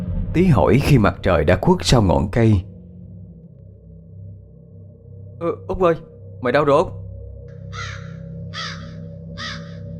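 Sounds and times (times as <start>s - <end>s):
speech: 0.4s - 2.7s, 5.4s - 7.0s, 7.7s - 8.1s
crows cawing overhead at dusk in a forest: 7.5s - 9.9s.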